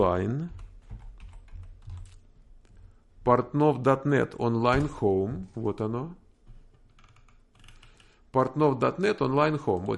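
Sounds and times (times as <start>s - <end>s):
speech: 0.0s - 0.6s, 3.2s - 6.2s, 8.4s - 9.9s
typing on a computer keyboard: 0.4s - 2.2s, 6.8s - 8.2s.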